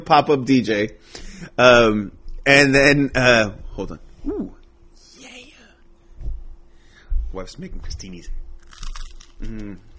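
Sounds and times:
speech: 0.0s - 4.6s, 7.3s - 8.8s, 9.4s - 9.9s
crunchy food being bitten: 8.6s - 9.9s
person murmuring: 9.4s - 9.9s.

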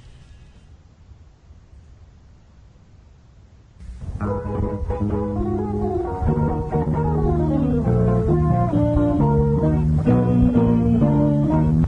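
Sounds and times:
football club anthem instrumental arrangement: 4.1s - 11.8s.

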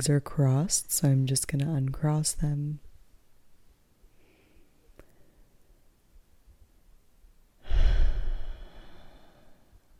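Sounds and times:
speech: 0.0s - 2.8s
deep breath taken during a seated relaxation practice: 4.1s - 5.6s, 7.6s - 9.9s.

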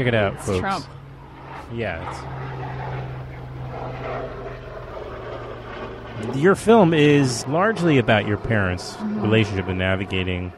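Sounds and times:
speech: 0.0s - 1.0s, 1.6s - 2.5s, 6.2s - 10.5s
helicopter flying with engine-and-rotor drone: 0.0s - 10.5s.

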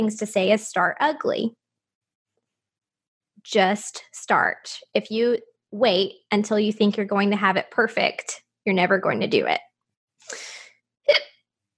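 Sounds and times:
speech: 0.0s - 1.6s, 3.4s - 10.4s
person hiccuping: 11.1s - 11.4s.

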